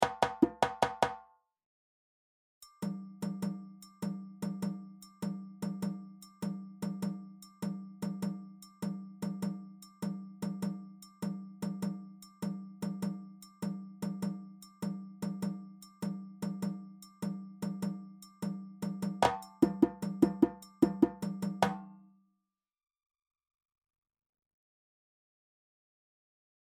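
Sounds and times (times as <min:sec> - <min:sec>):
kenkeni drum: 0:00.0 - 0:01.2, 0:02.8 - 0:22.0.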